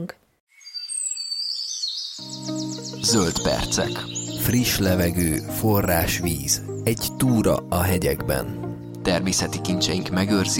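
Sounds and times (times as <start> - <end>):
speech: 0.0 - 0.2, 3.0 - 10.5
swallows calling in high thin twittering chirps: 0.5 - 7.4
music with low sustained notes: 2.2 - 10.5.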